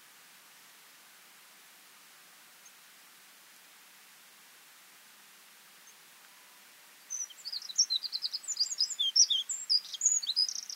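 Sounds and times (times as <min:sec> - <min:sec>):
faint hiss: 0:00.0 - 0:10.7
Eurasian wren Troglodytes troglodytes high sharp twittering: 0:07.1 - 0:10.7.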